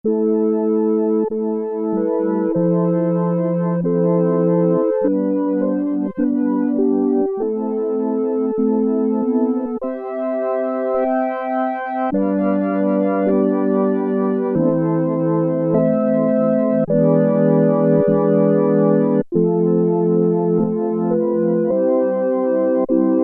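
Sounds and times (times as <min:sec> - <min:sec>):
hymn organ patch on Oberheim OB-8 synthesizer: 0:00.2 - 0:23.2.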